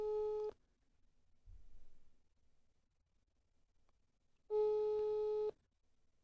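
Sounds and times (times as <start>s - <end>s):
telephone call tone over mobile phone speakerphone: 4.5s - 5.5s.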